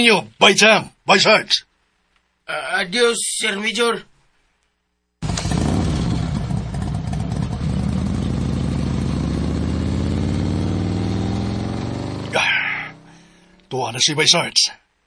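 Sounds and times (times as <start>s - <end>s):
speech: 0.0s - 1.7s, 2.5s - 4.1s, 13.7s - 14.8s
motorcycle engine revving as it pulls away: 5.2s - 13.7s.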